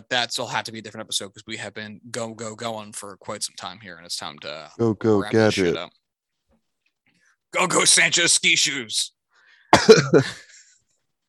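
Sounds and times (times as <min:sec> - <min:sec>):
speech: 0:00.0 - 0:06.0, 0:07.5 - 0:10.5
cough blending into laughter: 0:09.8 - 0:10.5.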